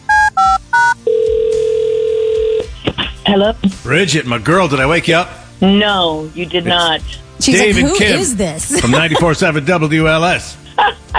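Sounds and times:
touch-tone dialing beeps: 0.1s - 2.6s
speech: 3.3s - 11.0s
laughter: 7.6s - 9.5s.

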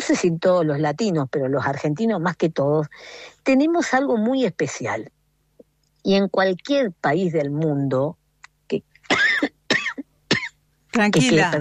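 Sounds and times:
speech: 0.1s - 5.2s, 6.0s - 9.5s, 10.9s - 11.5s
sharp dry allergic coughs: 9.1s - 10.6s.

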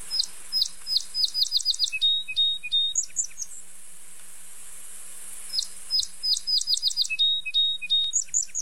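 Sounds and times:
song sparrow singing: 0.0s - 3.6s, 5.5s - 8.6s.

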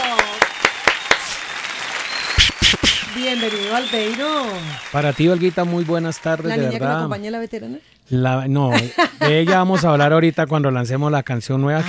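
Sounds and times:
audience applause: 0.0s - 7.1s
speech: 3.2s - 11.8s
laughter: 8.7s - 10.5s.

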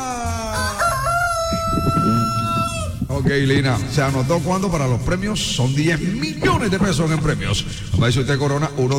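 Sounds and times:
rooster crowing: 0.2s - 3.1s
speech: 3.2s - 8.9s.

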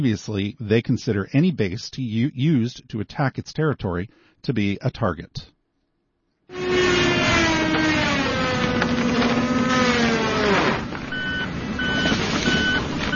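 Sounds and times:
speech: 0.0s - 5.6s
engine droning during tree cutting in a park: 6.5s - 13.1s
high truck reversing beeps: 11.1s - 13.1s.

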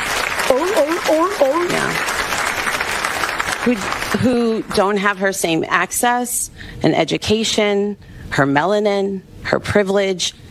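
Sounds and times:
crowd clapping: 0.0s - 5.2s
speech: 0.8s - 2.2s, 3.6s - 10.4s.

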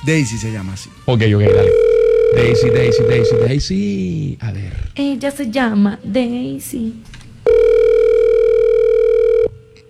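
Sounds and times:
speech: 0.0s - 7.6s
telephone ringing on the line: 1.5s - 3.6s, 7.5s - 9.8s.

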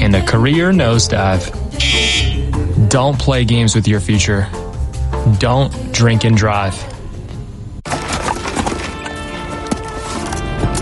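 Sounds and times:
speech: 0.2s - 1.6s, 2.8s - 4.6s, 5.2s - 6.9s
horse hooves clopping: 7.9s - 10.7s.

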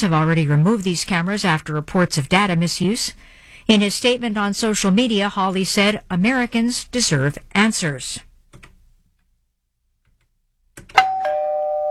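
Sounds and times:
speech: 0.0s - 8.3s
doorbell click: 10.9s - 11.9s.

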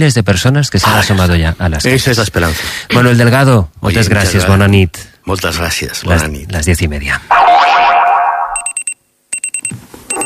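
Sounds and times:
speech: 0.0s - 7.8s
springy descending boing: 7.3s - 8.7s
alarm clock beeping with quick high electronic pips: 7.8s - 10.2s.

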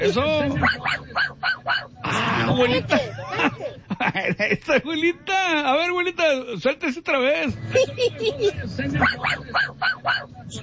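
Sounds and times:
speech: 0.0s - 1.8s, 2.5s - 10.6s
small dog yapping: 0.6s - 1.9s, 9.0s - 10.3s
laughter: 2.0s - 4.9s, 7.6s - 9.6s.

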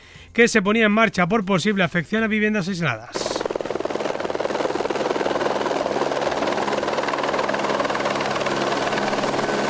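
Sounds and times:
speech: 0.4s - 3.3s
helicopter rotor chopping, possibly a firefighting helicopter: 3.1s - 9.6s.

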